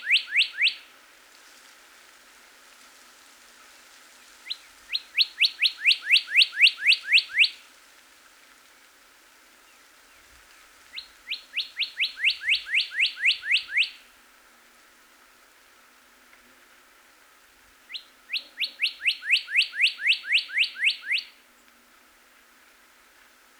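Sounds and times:
northern cardinal song: 0.0 - 0.8, 4.5 - 7.6, 10.9 - 14.0, 17.9 - 21.4.

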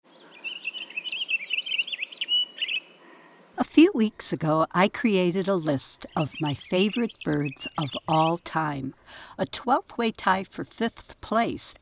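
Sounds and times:
Pine Grosbeak singing a rich warbled phrase: 0.1 - 2.9, 4.0 - 9.0
speech: 3.7 - 11.8.

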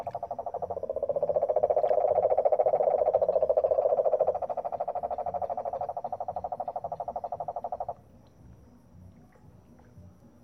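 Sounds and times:
cane toad trilling in San Jose Costa Rica: 0.0 - 8.0.

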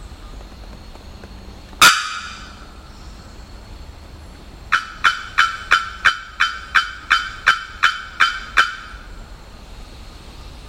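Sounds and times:
bearded bellbird giving metallic bocks: 1.8 - 2.7, 4.7 - 9.1.

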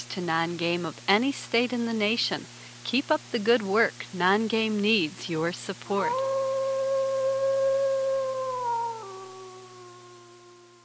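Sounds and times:
speech: 0.2 - 6.3
wolf howling: 6.0 - 10.8.

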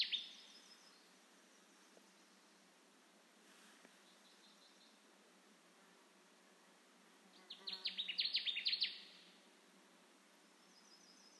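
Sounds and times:
Connecticut warbler song of loud ringing downslurred notes: 0.0 - 2.9, 3.9 - 5.1, 7.3 - 9.5, 10.3 - 11.3.

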